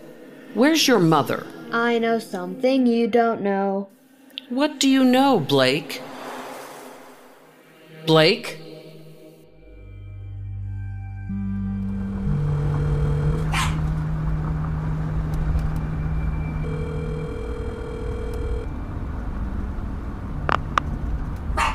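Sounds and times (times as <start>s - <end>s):
speech: 0.5s - 6.1s, 8.1s - 8.6s
low droning hum with sustained tonal notes: 10.0s - 21.7s
dog barking: 13.5s - 13.8s, 21.6s - 21.7s.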